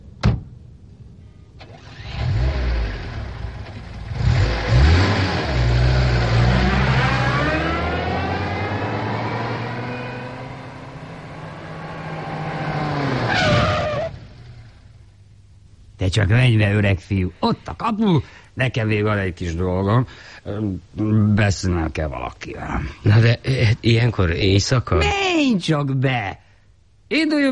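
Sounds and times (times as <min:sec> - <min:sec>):
car engine starting at night and car driving off: 0:01.6 - 0:15.0
speech: 0:16.2 - 0:26.5, 0:27.1 - 0:27.5.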